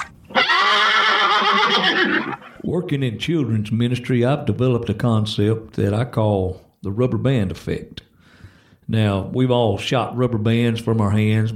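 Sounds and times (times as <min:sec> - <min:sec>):
horse whinnying: 0:00.0 - 0:02.7
speech: 0:02.7 - 0:08.1, 0:08.9 - 0:11.5.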